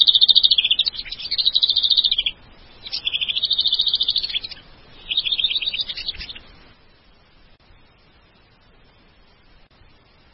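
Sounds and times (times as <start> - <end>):
White-rumped shama singing warbled phrases: 0.0 - 6.6.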